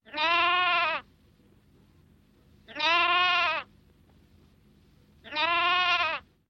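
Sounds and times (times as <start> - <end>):
lamb sounds: 0.0 - 1.0, 2.7 - 3.7, 5.2 - 6.3.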